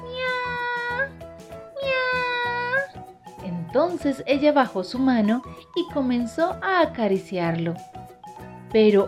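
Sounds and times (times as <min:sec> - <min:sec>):
cat meowing: 0:00.0 - 0:01.1, 0:01.7 - 0:02.9
speech: 0:03.7 - 0:08.0, 0:08.7 - 0:09.0.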